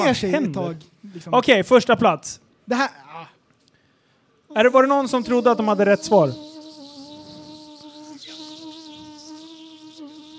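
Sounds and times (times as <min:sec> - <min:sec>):
speech: 0:00.0 - 0:03.3, 0:04.5 - 0:06.5
hovering mosquito's high thin whine: 0:04.5 - 0:10.3.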